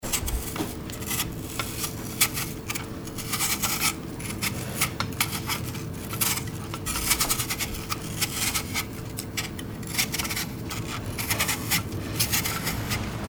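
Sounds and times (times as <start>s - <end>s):
apple peeling: 0.0s - 13.2s.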